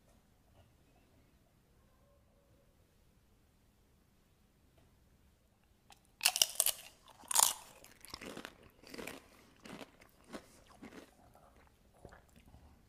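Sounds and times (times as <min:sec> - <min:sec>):
person biting and chewing jalapeno relish from a jar: 0:05.9 - 0:12.6.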